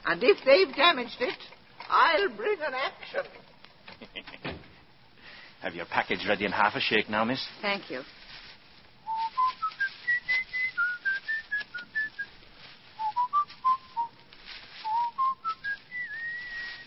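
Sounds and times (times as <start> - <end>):
speech: 0.1 - 4.6, 5.6 - 8.2
person whistling a slow rising and falling tune: 9.1 - 12.3, 13.0 - 14.1, 14.8 - 16.8.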